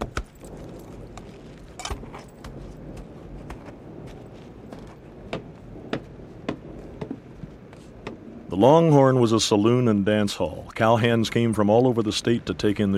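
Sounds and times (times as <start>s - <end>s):
horse hooves clip-clopping at walking pace through a town street in the rain: 0.0s - 8.4s
constant wash of noise: 0.0s - 12.9s
speech: 8.6s - 12.9s.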